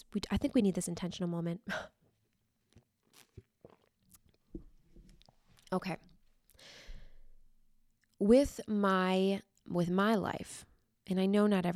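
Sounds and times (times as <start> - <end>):
speech: 0.1 - 2.0, 5.7 - 6.8, 8.2 - 11.7
sipping coffee: 2.7 - 5.3
swallowing: 2.7 - 5.7.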